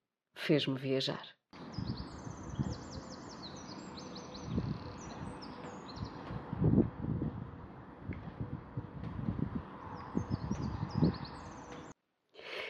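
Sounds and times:
speech: 0.5s - 1.4s
small bird singing trilling phrases at a window: 1.6s - 7.3s, 9.8s - 11.9s
steady low rumble of wind: 1.6s - 11.9s.

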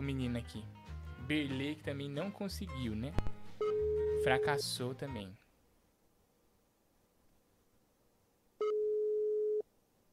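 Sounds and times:
speech: 0.0s - 5.4s
telephone call tone while placing a call: 3.6s - 4.6s, 8.6s - 9.6s.

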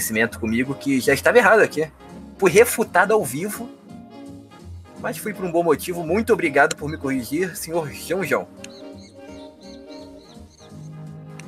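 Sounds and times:
speech: 0.0s - 3.8s, 5.0s - 8.8s
small bird chirping: 8.6s - 11.0s.

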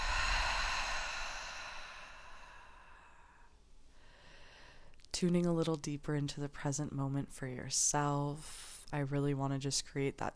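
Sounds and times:
deep breath in through the nose and out through the mouth: 0.0s - 5.0s
speech: 5.2s - 10.3s.

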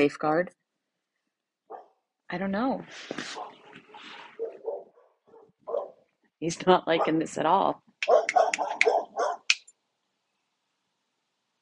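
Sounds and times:
speech: 0.0s - 0.6s, 2.3s - 4.2s, 6.4s - 8.9s
dog barking at a person passing on the street: 1.7s - 2.0s, 3.3s - 6.0s, 7.0s - 7.2s, 8.0s - 9.5s.

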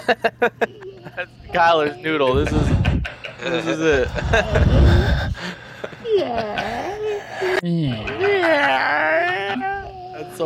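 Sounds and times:
laughter: 0.0s - 10.0s
speech: 0.1s - 5.5s, 6.1s - 6.8s, 7.6s - 9.2s
heavy breathing with voiced gasps and whimpering: 2.3s - 8.2s.

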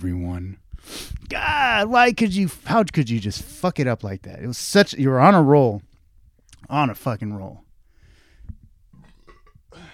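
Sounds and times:
speech: 0.0s - 5.9s, 6.6s - 7.6s
burp caught by a microphone: 8.9s - 9.9s.

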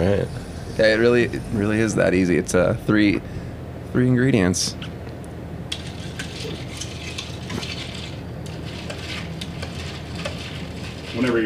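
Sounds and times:
speech: 0.2s - 4.9s, 11.2s - 11.4s
spoon stirring drinks topped with soda water: 5.7s - 11.4s.

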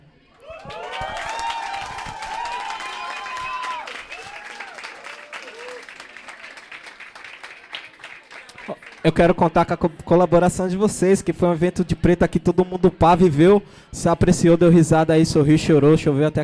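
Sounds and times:
audience cheering and whooping: 0.4s - 6.6s
large audience applause at an event: 0.4s - 9.2s
speech: 9.0s - 16.4s.

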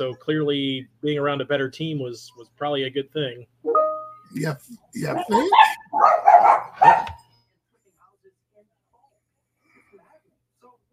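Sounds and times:
speech: 0.0s - 7.2s
dogs barking: 5.1s - 7.3s.

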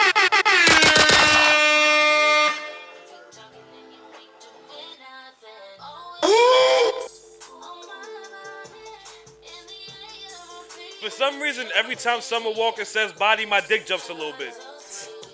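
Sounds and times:
air horn blasts: 0.0s - 3.1s
music: 2.5s - 15.3s
speech: 11.3s - 14.7s.

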